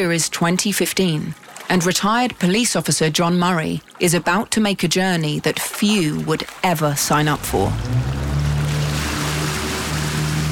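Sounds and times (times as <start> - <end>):
speech: 0.0 - 8.2
harbour water washing and splashing: 0.0 - 10.5
small fishing boat outboard motor droning at Valletta Harbour: 5.8 - 10.5.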